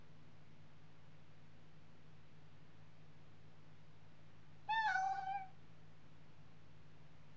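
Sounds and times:
faint low hum: 0:00.0 - 0:07.3
domestic cat giving a drawn-out meow: 0:04.7 - 0:05.5.

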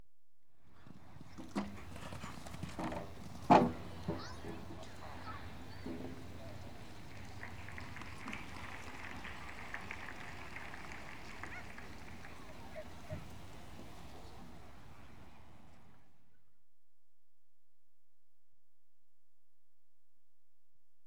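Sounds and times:
horse jumping in show jumping: 0:00.8 - 0:14.8.

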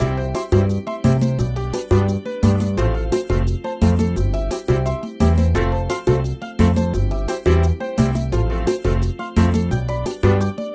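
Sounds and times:
music loop: 0:00.0 - 0:10.7.

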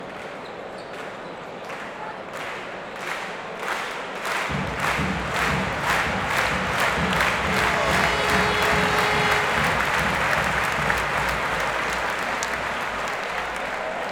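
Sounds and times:
excited crowd clapping in unison at an international basketball game: 0:00.0 - 0:14.1
drum beat at an international basketball game: 0:04.5 - 0:14.1.

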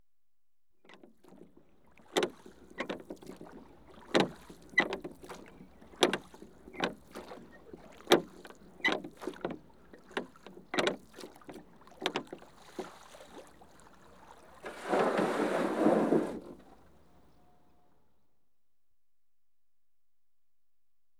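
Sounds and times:
one man rowing a rowing boat: 0:00.8 - 0:17.8.

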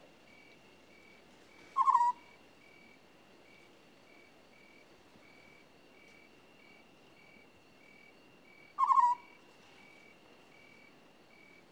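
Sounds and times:
African scops owl purring trill: 0:01.8 - 0:02.2, 0:08.8 - 0:09.2.

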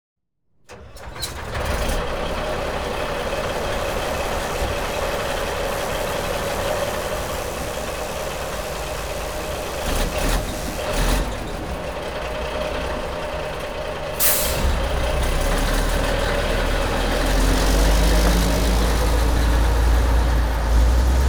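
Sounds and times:
dumper truck starting at a quarry: 0:00.7 - 0:21.2.

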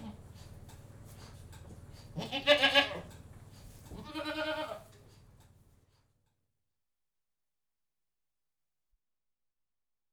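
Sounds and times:
low background hum inside a goat house: 0:00.0 - 0:06.4
goat bleating inside a goat house: 0:02.2 - 0:03.1, 0:03.9 - 0:04.9.

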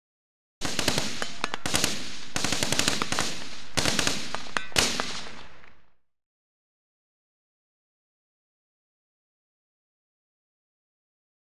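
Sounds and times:
5-56mm Light Support Weapon: 0:00.6 - 0:05.8.

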